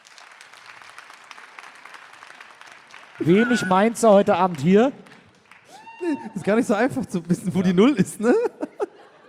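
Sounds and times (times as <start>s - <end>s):
audience applause: 0.0s - 6.9s
speech: 3.2s - 5.0s, 6.1s - 8.6s
laughter: 6.0s - 9.2s.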